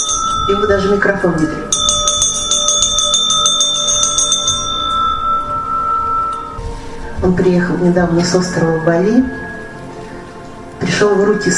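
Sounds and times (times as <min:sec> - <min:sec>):
ancient small bell shaken rapidly: 0:00.0 - 0:06.7
speech: 0:00.5 - 0:01.8, 0:07.2 - 0:09.4, 0:11.0 - 0:11.5.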